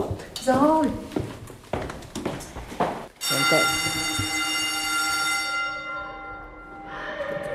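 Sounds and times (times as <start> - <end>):
speech: 0.4 - 1.1, 3.5 - 4.2
school bell ringing: 3.2 - 7.5.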